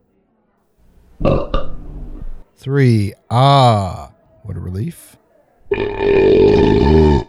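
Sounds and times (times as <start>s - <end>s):
loud belch while tasting beers: 1.2s - 1.8s, 5.7s - 7.2s
speech: 2.6s - 7.2s.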